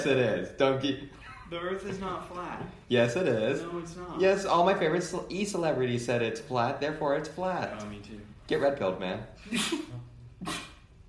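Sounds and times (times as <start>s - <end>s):
speech: 0.0s - 10.7s
person sneezing: 9.6s - 10.9s.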